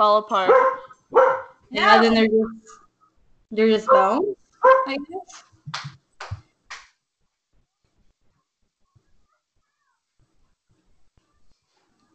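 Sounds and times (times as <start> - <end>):
speech: 0.0 - 2.8, 3.5 - 6.0
dog barking: 0.5 - 1.6, 3.9 - 5.0
dogs yipping and whimpering: 0.5 - 2.2.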